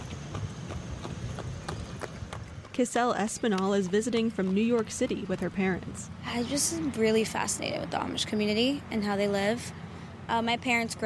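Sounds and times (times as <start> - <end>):
horse hooves clip-clopping as a horse and buggy passes a farm stand in Lancaster County: 0.0 - 6.2
speech: 2.8 - 11.0.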